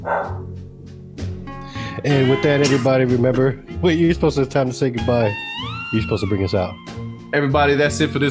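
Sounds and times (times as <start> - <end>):
dog barking: 0.0 - 0.5
speech: 2.0 - 8.2.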